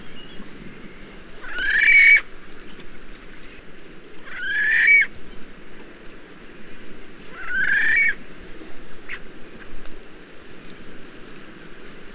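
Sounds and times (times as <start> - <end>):
magnificent frigatebird grating calls on the breeding grounds: 0.0 - 2.3, 4.2 - 5.2, 7.3 - 8.2.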